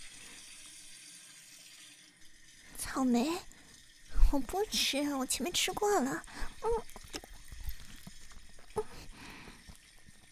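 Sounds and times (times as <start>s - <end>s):
faucet running into a sink while dishes are washed: 0.0s - 10.3s
speech: 3.0s - 3.5s, 4.3s - 7.3s.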